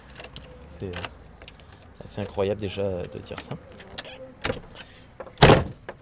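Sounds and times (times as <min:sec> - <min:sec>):
speech: 0:00.8 - 0:01.2, 0:02.0 - 0:03.9
door being pushed shut and failing to latch: 0:03.3 - 0:06.0.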